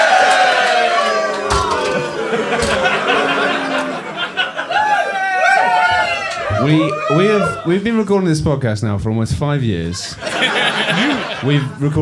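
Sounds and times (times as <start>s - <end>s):
audience cheering and whooping: 0.0s - 7.8s
door closing: 1.1s - 4.4s
laughter: 2.2s - 5.1s, 9.9s - 11.9s
speech: 6.6s - 12.0s.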